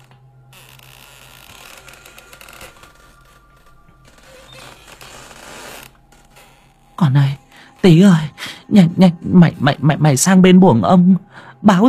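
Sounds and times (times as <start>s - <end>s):
two doors swinging back and forth, creaking: 0.0s - 8.4s
speech: 7.1s - 11.8s.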